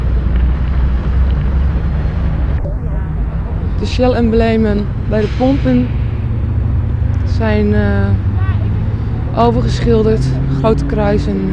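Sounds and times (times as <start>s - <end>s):
heavy truck driving through roadside verge: 0.0s - 11.5s
wind buffeting microphone: 0.0s - 11.5s
speech: 3.9s - 6.0s, 7.4s - 8.3s, 9.4s - 11.5s.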